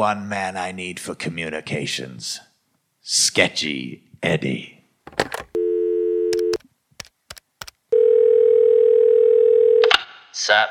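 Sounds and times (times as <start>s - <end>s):
speech: 0.0s - 5.2s, 10.5s - 10.6s
rotary telephone dial tone: 5.3s - 9.9s
string of short rotary telephone clicks: 6.3s - 7.8s.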